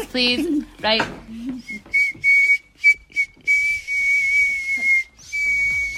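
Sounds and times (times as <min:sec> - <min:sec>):
speech: 0:00.0 - 0:01.3
girl whistling a Christmas song through her teeth: 0:01.6 - 0:05.9.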